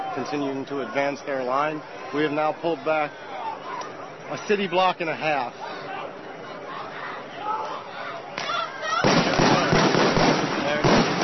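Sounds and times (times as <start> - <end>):
people shouting: 0.0 - 10.0
crowd noise: 0.0 - 11.2
speech: 0.2 - 3.4, 4.3 - 5.8
rubber bullets fired by police at a crowd: 9.0 - 11.2.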